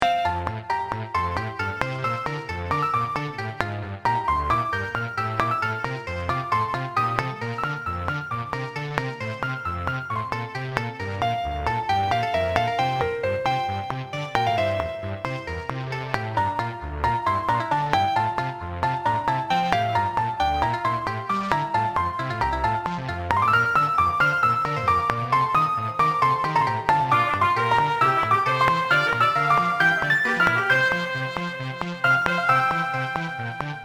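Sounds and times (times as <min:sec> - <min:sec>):
background music: 0:00.0 - 0:33.8.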